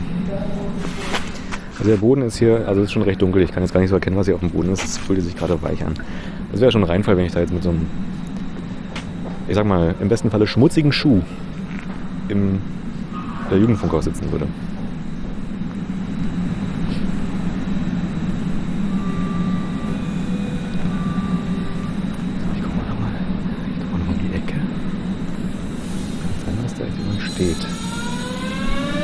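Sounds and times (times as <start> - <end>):
S-Bahn commuter train departing with low rumble: 0.0 - 29.0
S-Bahn train electric motor whine: 0.5 - 2.0, 4.5 - 6.0, 15.8 - 29.0
speech: 1.8 - 8.2, 9.5 - 11.5, 12.3 - 12.8, 13.5 - 14.7, 27.4 - 27.8.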